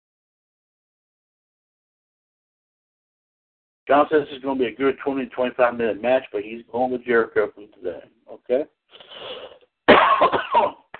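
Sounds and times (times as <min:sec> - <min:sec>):
speech: 0:03.9 - 0:09.4, 0:10.2 - 0:10.8
harsh cough: 0:09.9 - 0:10.9
person clearing throat: 0:09.9 - 0:10.9.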